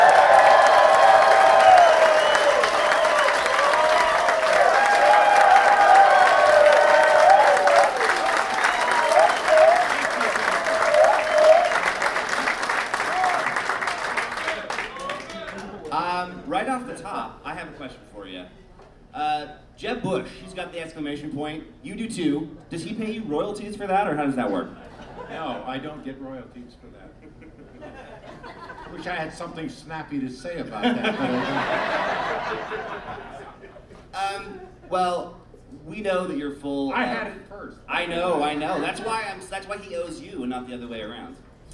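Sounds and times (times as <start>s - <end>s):
crowd whoops and cheers: 0.0s - 12.1s, 13.0s - 15.5s
crowd applauding: 0.0s - 16.0s
speech: 20.8s - 33.4s, 34.1s - 41.7s
laughter: 24.5s - 25.6s, 27.0s - 29.1s, 30.7s - 35.0s, 38.3s - 39.3s.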